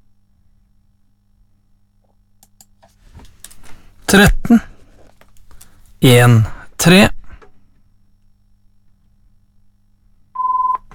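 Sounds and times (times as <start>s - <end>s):
speech: 4.1s - 4.7s, 6.0s - 7.2s
telephone ringing with short loud electronic tone: 10.4s - 10.8s.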